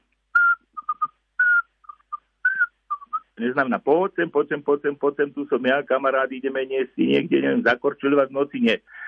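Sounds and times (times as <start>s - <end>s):
Eurasian pygmy owl whistling call: 0.4s - 3.4s
speech: 3.4s - 9.0s.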